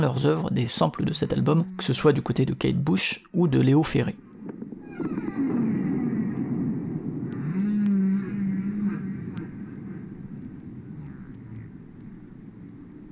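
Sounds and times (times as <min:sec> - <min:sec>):
speech: 0:00.0 - 0:04.3
humpback-style whale song moans: 0:01.3 - 0:02.5, 0:04.4 - 0:13.1
underwater rumble and hiss: 0:04.2 - 0:13.1.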